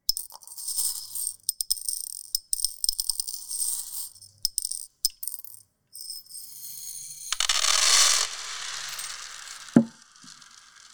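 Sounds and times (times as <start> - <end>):
beads handled and rolled, rattling and clicking: 0.0 - 10.4.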